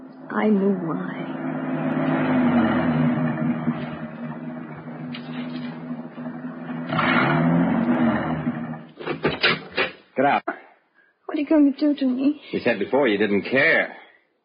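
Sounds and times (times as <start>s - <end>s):
car engine labouring uphill: 0.0s - 9.4s
speech: 0.3s - 1.5s, 11.5s - 14.0s.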